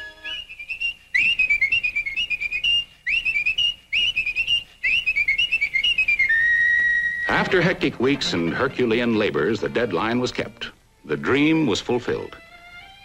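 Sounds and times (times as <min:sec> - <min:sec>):
workers whistling a lively tune: 0:00.0 - 0:07.5
speech: 0:07.5 - 0:12.4.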